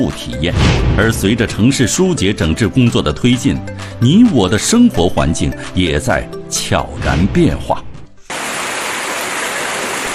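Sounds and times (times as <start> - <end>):
speech: 0.0 - 7.9
stream water flowing among reeds in winter at Sanlihe near Qianmen in Beijing: 8.3 - 10.1.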